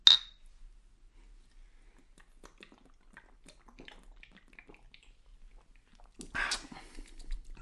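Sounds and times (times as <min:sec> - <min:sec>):
glass clink: 0:00.0 - 0:00.4
sipping and swallowing beer from a large bottle: 0:02.2 - 0:07.6.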